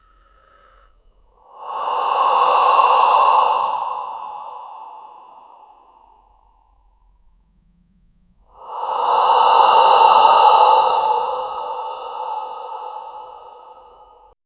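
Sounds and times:
slow anxious rasping breath: 0.0s - 7.2s, 8.4s - 14.4s.

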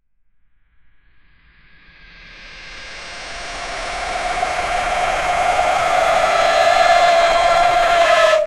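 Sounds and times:
fast rising pitch zoom-in whoosh: 2.6s - 8.4s.

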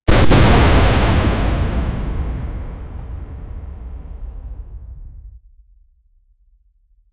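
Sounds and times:
small explosion: 0.1s - 5.4s.

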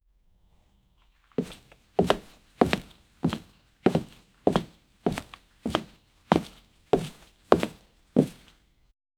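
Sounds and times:
priest walking slowly in wooden sandals: 1.4s - 8.5s.

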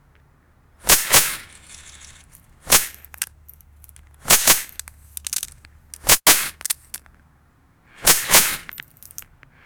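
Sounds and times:
anime fire arrow whoosh: 0.8s - 2.9s, 8.0s - 8.7s.

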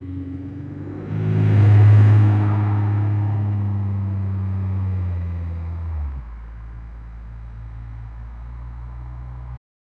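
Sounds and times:
car drifting: 0.2s - 9.5s.

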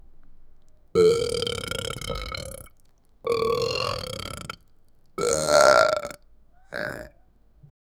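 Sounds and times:
adult burping: 1.0s - 2.7s, 3.3s - 4.6s, 5.2s - 7.2s.

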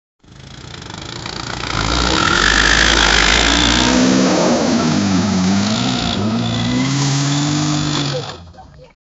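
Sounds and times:
scooter engine: 0.2s - 9.0s.

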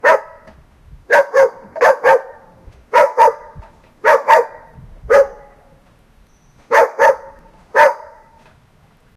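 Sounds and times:
dog barking in the rain: 0.0s - 0.5s, 1.1s - 5.7s, 6.7s - 8.4s.

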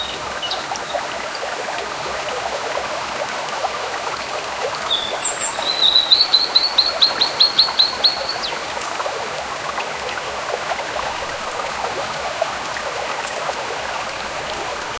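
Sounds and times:
water flowing: 0.0s - 14.9s
birds chirping: 4.8s - 9.0s.

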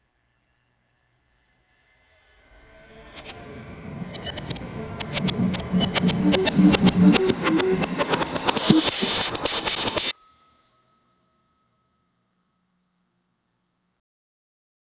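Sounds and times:
sharp time slice sound effect: 2.2s - 10.1s.

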